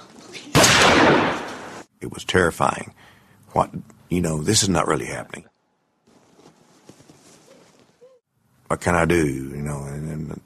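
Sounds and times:
gunfire in a dining room: 0.6s - 1.9s
speech: 2.0s - 5.5s, 8.7s - 10.4s.

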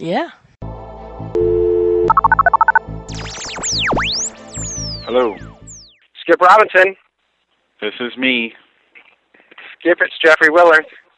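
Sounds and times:
speech: 0.0s - 0.4s, 2.2s - 2.5s, 5.1s - 5.5s, 6.3s - 7.0s, 7.8s - 8.6s, 9.8s - 11.0s
steady phone dial tone: 1.4s - 2.8s
swooping electronic tones of a call going through: 2.0s - 6.0s
phone keypad beeps: 2.1s - 2.8s.

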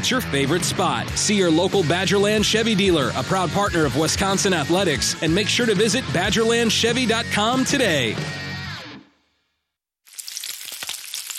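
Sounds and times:
speech: 0.0s - 8.4s
sausage strips sizzling in a hot pan: 10.1s - 11.3s.

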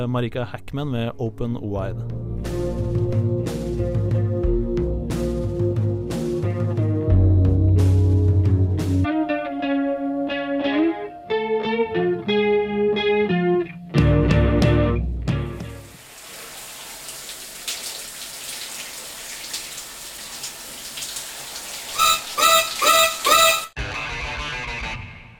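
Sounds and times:
speech: 0.0s - 2.6s
music track with synth, guitar and bass: 1.9s - 15.9s, 22.0s - 25.3s.

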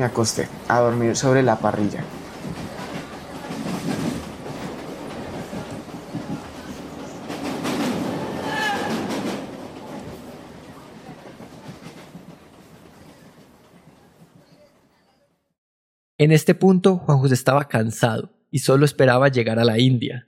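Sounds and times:
speech: 0.0s - 2.2s, 16.2s - 20.2s
passenger train rumbling and clattering along rails: 0.0s - 15.0s
bursts of train screeching: 8.1s - 9.2s.

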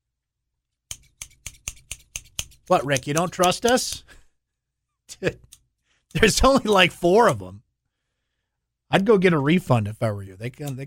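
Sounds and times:
scissors snipping: 0.9s - 4.1s
speech: 2.7s - 4.2s, 5.1s - 5.5s, 6.1s - 7.6s, 8.9s - 10.8s.

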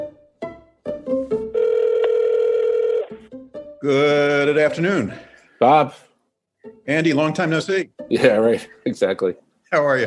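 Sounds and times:
telephone ringing tone: 1.5s - 3.2s
telephone keypad tones: 1.6s - 3.1s
speech: 3.8s - 6.1s, 6.9s - 10.0s.

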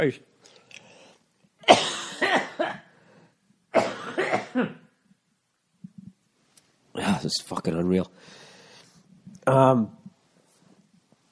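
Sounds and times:
speech: 0.0s - 0.3s, 4.6s - 4.8s, 7.0s - 8.4s, 9.5s - 10.0s
man with a bad cough coughing harshly: 1.6s - 2.9s, 3.7s - 4.9s.

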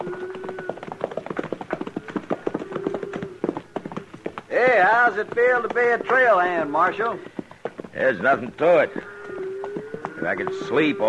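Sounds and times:
faint steady tone: 0.0s - 11.0s
horse loping on a cattle trail drive, hooves clip-clopping: 0.0s - 11.0s
speech: 4.5s - 9.0s, 10.2s - 11.0s.

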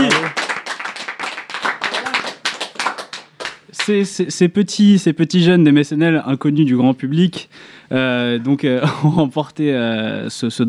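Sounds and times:
laughter: 0.0s - 0.4s
small group applauding: 0.0s - 4.0s
speech: 3.9s - 10.6s.

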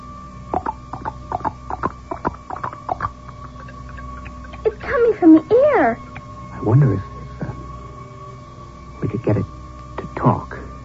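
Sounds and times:
faint hum: 0.0s - 10.8s
quick crisp tapping in a horse clip-clop rhythm: 0.5s - 3.1s
speech: 5.2s - 7.1s.

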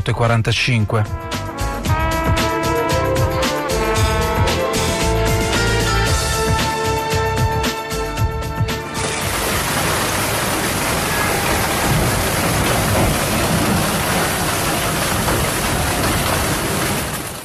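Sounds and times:
speech: 0.0s - 1.4s
music: 0.0s - 9.4s
heavy afternoon hailstorm with large hailstones pelting down: 8.8s - 17.4s.

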